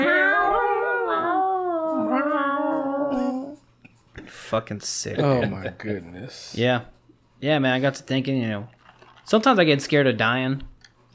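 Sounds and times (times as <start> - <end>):
cat caterwauling yowl: 0.0 - 3.4
speech: 4.5 - 11.1.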